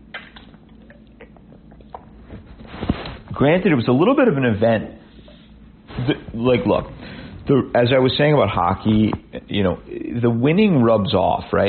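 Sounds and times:
person swallowing: 0.0s - 2.2s
person sipping water: 0.1s - 3.3s
speech: 3.4s - 5.0s, 6.4s - 11.6s.

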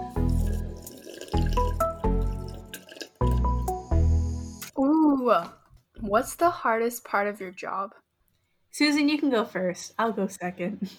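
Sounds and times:
person gulping and swallowing water: 0.2s - 3.6s
speech: 5.3s - 8.0s, 8.8s - 10.9s.

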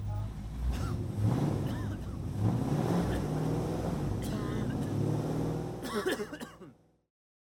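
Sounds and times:
combustion-engine car revving and passing by: 0.6s - 5.8s.

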